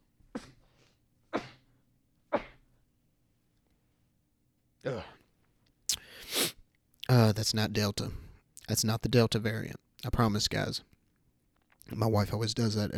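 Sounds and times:
quiet hum: 0.0 - 12.9
person sneezing: 0.3 - 1.7, 2.3 - 2.7, 4.8 - 5.2, 6.0 - 6.6
speech: 7.2 - 10.9, 11.9 - 12.9.

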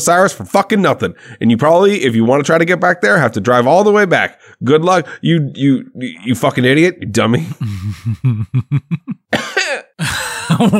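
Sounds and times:
speech: 0.0 - 10.7
laughter: 7.4 - 9.3, 10.0 - 10.7
person coughing: 9.3 - 10.7.

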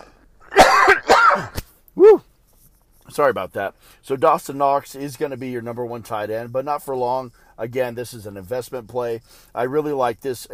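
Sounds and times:
person coughing harshly: 0.5 - 1.6
speech: 3.2 - 10.5.

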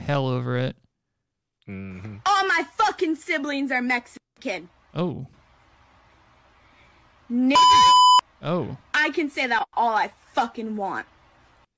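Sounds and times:
speech: 0.1 - 0.8, 1.7 - 5.4, 7.3 - 11.2
loud steady electronic censor beep: 7.6 - 8.2.

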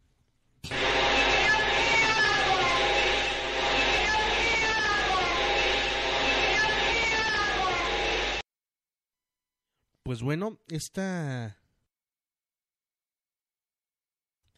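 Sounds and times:
eerie wailing voice-like psychophony sound in an abandoned house: 0.7 - 8.4
speech: 10.1 - 11.6.

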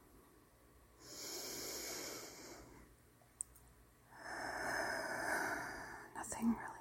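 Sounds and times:
deep breath in and out: 1.0 - 2.9, 4.1 - 6.2
speech: 6.4 - 6.7.

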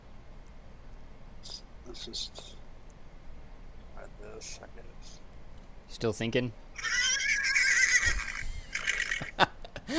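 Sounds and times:
speech: 2.0 - 2.6, 4.2 - 5.2, 5.9 - 6.9
person imitating a high-pitched wavering horse whinny: 6.8 - 9.2.

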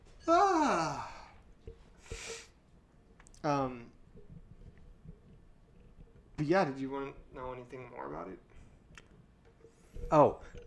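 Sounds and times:
long yawn with falling voiced groan: 0.2 - 1.4
speech: 6.5 - 8.5, 10.1 - 10.6.

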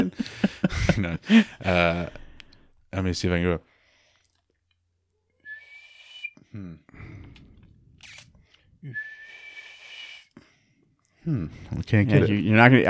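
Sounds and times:
speech: 0.0 - 2.2, 2.9 - 3.7, 6.6 - 7.2, 11.2 - 12.8
person imitating elk bugle with high-pitched whistling squeals: 5.4 - 6.4, 8.8 - 10.3.

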